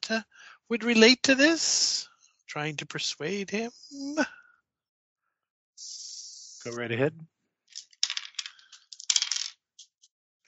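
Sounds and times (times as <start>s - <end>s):
speech: 0.1s - 4.4s, 6.6s - 7.3s
dice clattering on a table: 7.7s - 9.9s.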